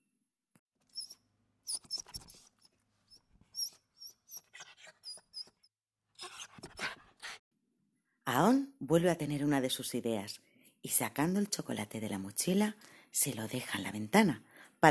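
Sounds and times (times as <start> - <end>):
soft high-pitched whimpering squeaks: 0.9 - 7.4
speech: 8.4 - 14.9.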